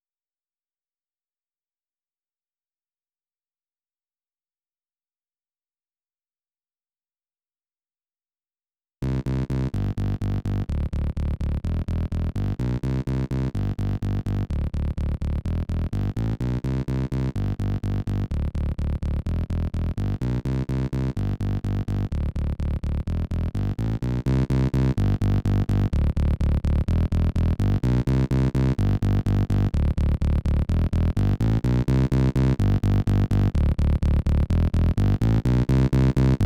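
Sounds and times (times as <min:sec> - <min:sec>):
bass: 0:09.0 - 0:36.4.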